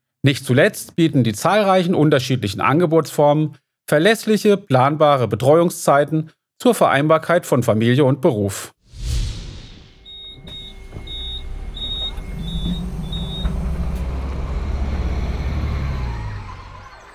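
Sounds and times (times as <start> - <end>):
speech: 0.2 - 8.8
bus door warning beep: 9.9 - 17.1
bus air brakes hissing: 10.0 - 16.9
bus engine idling and pulling away: 10.0 - 17.1.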